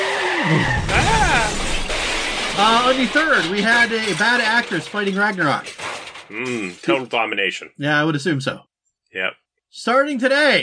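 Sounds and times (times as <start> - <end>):
tires skidding squeal: 0.0 - 2.9
car crash: 0.0 - 7.5
speech: 0.4 - 1.0, 2.6 - 10.6.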